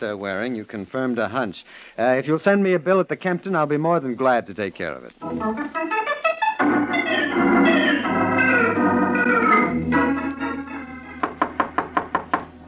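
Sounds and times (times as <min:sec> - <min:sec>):
speech: 0:00.0 - 0:06.0
dramatic music: 0:05.2 - 0:11.7
loud knocking on a door: 0:11.2 - 0:12.5.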